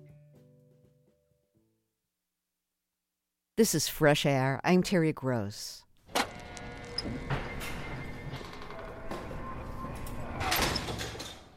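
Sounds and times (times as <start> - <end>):
speech: 3.6 - 5.9, 7.0 - 7.4
heavy prison door slamming shut: 6.1 - 11.5.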